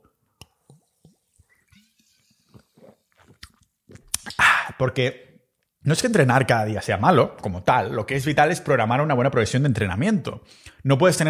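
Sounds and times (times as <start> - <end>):
person sipping and swallowing water: 0.4 - 4.8
sharp mouth click: 3.3 - 4.8
speech: 4.8 - 11.2.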